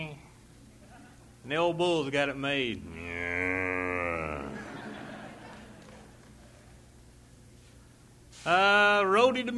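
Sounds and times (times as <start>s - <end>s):
speech: 1.5s - 2.9s, 8.4s - 9.5s
young calf mooing: 2.8s - 4.7s
laughter: 3.4s - 6.9s.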